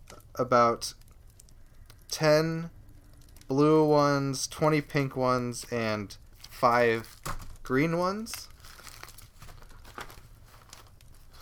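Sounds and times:
speech: 0.4 - 1.0, 2.1 - 2.8, 3.5 - 8.5
paper receipts and envelope rustling and crinkling: 4.7 - 11.3.

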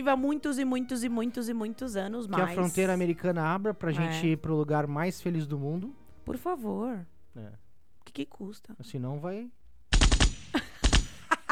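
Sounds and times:
speech: 0.0 - 9.6
automatic machine gun fire: 9.9 - 11.2.

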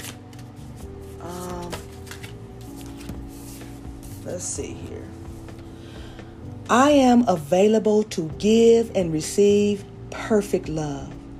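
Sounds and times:
deck of cards being shuffled: 0.0 - 4.4
speech: 4.3 - 5.2, 6.7 - 11.1.

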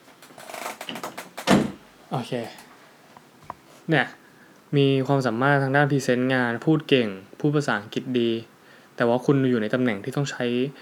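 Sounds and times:
door pushed shut with a firm thud: 0.9 - 1.8
speech: 2.1 - 2.6, 3.9 - 10.8
soft shuffling and handling noises: 2.1 - 3.9.

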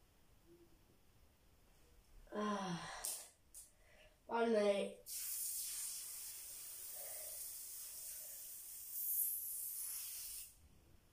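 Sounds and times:
speech: 4.4 - 5.2
spray adhesive can hissing: 5.1 - 10.6.

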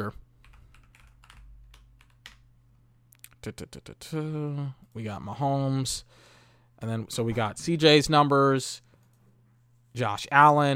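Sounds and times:
speech: 0.0 - 0.2, 3.4 - 8.9, 10.0 - 10.7
faint steady low hum: 0.0 - 10.7
typing one-handed on a computer keyboard: 0.4 - 2.4.

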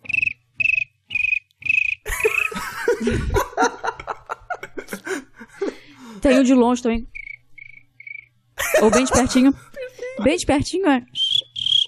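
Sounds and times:
voice imitating cricket chirps: 0.0 - 2.6, 7.2 - 8.3, 11.2 - 11.8
outburst of laughter: 2.1 - 5.9, 8.6 - 10.3
speech: 3.0 - 3.8, 6.2 - 7.1, 8.8 - 11.2.

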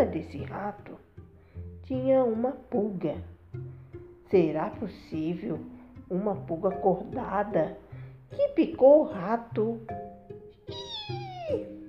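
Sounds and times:
speech: 0.0 - 1.1, 1.8 - 3.7, 4.3 - 10.8
cat meowing: 10.7 - 11.8.

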